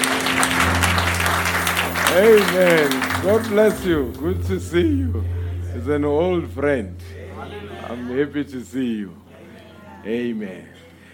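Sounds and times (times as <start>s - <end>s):
audience applause at a church service: 0.0s - 4.5s
low constant hum: 0.0s - 11.1s
speech: 2.1s - 9.2s, 10.0s - 10.8s.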